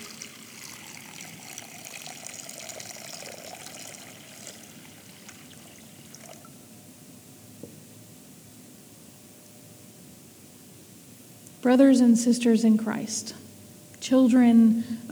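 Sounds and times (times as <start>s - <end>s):
water poured onto rocks splashing into a bowl during a remembrance of baptism: 0.0s - 6.5s
speech: 11.6s - 13.4s, 14.1s - 15.0s.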